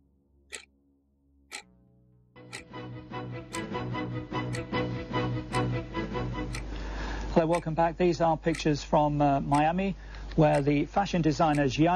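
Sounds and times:
dense musical backdrop: 2.4 - 6.7
clock ticking: 3.5 - 3.7, 5.5 - 5.7, 6.5 - 6.7, 7.4 - 7.8, 8.5 - 8.8, 9.4 - 9.8, 10.4 - 11.9
speech: 7.4 - 11.9.

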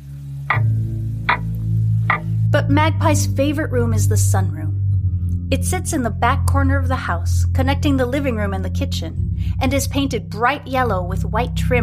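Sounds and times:
steady low hum: 0.0 - 11.8
old clock on a thick wood mantel ticking: 0.5 - 2.4
speech: 2.6 - 4.8, 5.5 - 11.8.

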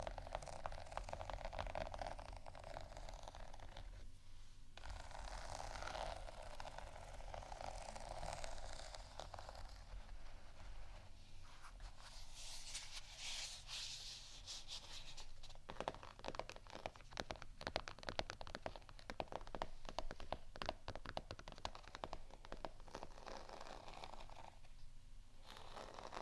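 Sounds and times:
scratching and rubbing on textured objects: 0.0 - 4.1, 4.8 - 24.8, 25.4 - 26.2
sharp crackly taps: 15.7 - 22.9.

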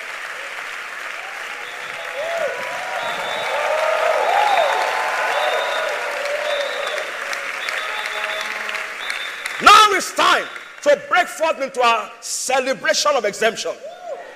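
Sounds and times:
large crowd applauding: 0.0 - 11.8
speech: 10.4 - 13.9.

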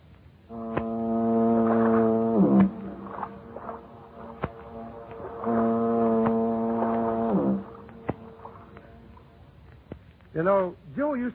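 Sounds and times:
foghorns booming across a bay: 0.5 - 9.0
speech: 10.4 - 11.3.

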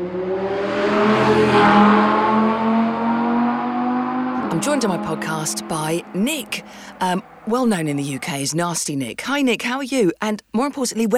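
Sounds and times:
motorbike engine pulling onto a driveway in London: 0.0 - 8.5
speech: 4.6 - 11.1.

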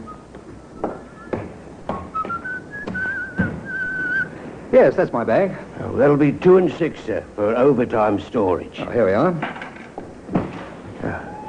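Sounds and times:
dull thumps like footsteps: 0.0 - 4.3
man whistling a wavering tune: 0.0 - 4.4
speech: 4.7 - 9.6.

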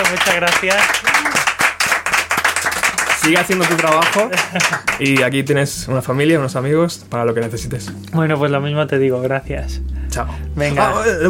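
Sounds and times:
speech: 0.0 - 1.4, 3.2 - 11.2
small group applauding: 0.0 - 5.7
laughter: 3.9 - 5.2.

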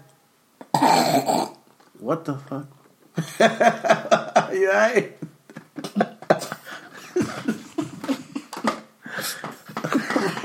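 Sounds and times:
person coughing and choking on swallowed weed: 0.6 - 1.6
speech: 2.0 - 5.2
laughter: 3.2 - 10.4.

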